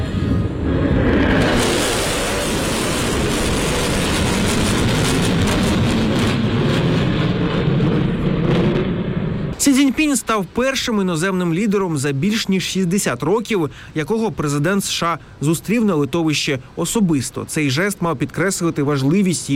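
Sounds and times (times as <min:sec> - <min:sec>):
US B-1 Lancer strategic bombers passing overhead: 0:00.0 - 0:10.6
speech: 0:10.0 - 0:19.5.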